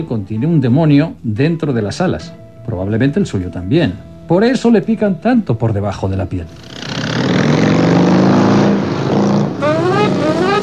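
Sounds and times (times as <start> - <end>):
speech: 0.0 - 6.7
motorcycle engine starting and riding away: 6.6 - 10.6.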